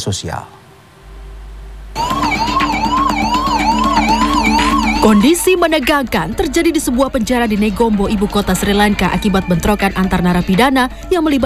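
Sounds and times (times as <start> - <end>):
speech: 0.0 - 0.6, 5.0 - 11.4
ambulance siren wailing at a prison in Negombo, Sri Lanka: 2.0 - 10.7.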